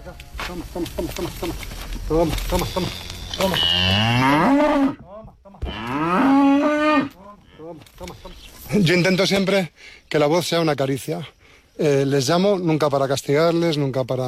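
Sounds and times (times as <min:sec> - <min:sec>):
speech: 0:00.1 - 0:05.1, 0:07.7 - 0:14.2
cows mooing on a farm pasture in Carcaboso: 0:02.4 - 0:05.0, 0:05.6 - 0:07.8.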